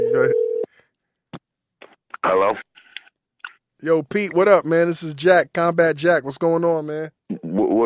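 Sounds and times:
electronic telephone ringing tone: 0:00.0 - 0:00.7
speech: 0:02.3 - 0:02.7, 0:03.8 - 0:07.8.

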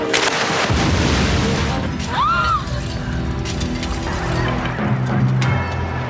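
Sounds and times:
crackling debris: 0:00.1 - 0:05.9
bomb explosion: 0:00.4 - 0:02.0.

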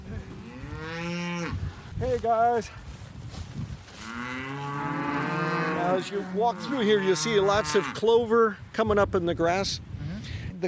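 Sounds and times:
cow mooing in a long bellow: 0:00.4 - 0:01.6, 0:04.0 - 0:08.1
speech: 0:02.0 - 0:02.9, 0:06.0 - 0:09.9.

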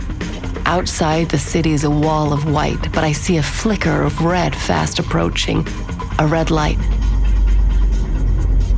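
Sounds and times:
car engine rumbling as the car slows for a red light in a city: 0:00.0 - 0:08.7
speech: 0:00.7 - 0:07.0.

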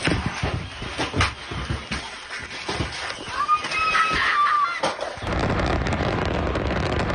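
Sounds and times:
whistling streaks: 0:00.1 - 0:04.4
loud explosions and sharp blasts: 0:05.2 - 0:07.1.

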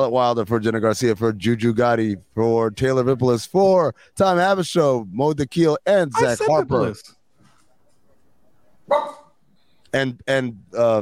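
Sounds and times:
speech: 0:00.0 - 0:07.2, 0:09.9 - 0:10.9
single sharp dog bark: 0:08.0 - 0:09.4.

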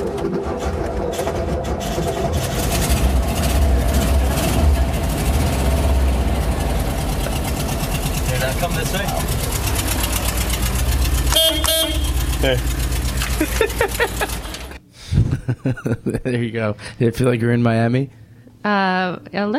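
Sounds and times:
old engine idling with rough mechanical chug: 0:00.0 - 0:14.8
car horn honks: 0:11.0 - 0:12.7
laughter: 0:13.2 - 0:16.6
speech: 0:15.6 - 0:19.5.

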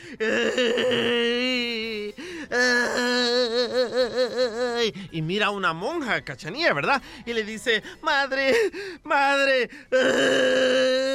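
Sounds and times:
voice imitating crying and whimpering while telling a joke: 0:00.0 - 0:05.0, 0:09.9 - 0:11.1
speech: 0:00.1 - 0:01.6, 0:04.0 - 0:11.1.

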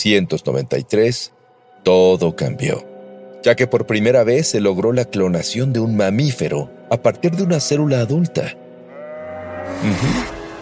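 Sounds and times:
speech: 0:00.0 - 0:08.6, 0:09.7 - 0:10.4
single sheep bleating: 0:08.8 - 0:10.4.

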